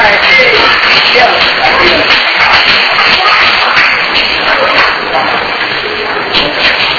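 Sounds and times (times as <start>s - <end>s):
faint voices: 0.0s - 6.9s
group of children clapping hands: 0.0s - 6.9s.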